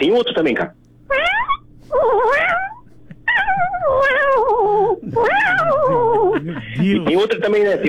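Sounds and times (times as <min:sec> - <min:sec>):
speech: 0:00.0 - 0:00.8, 0:06.5 - 0:07.8
person in Niterói imitating cat meows: 0:01.2 - 0:06.4
laughter: 0:02.8 - 0:07.8.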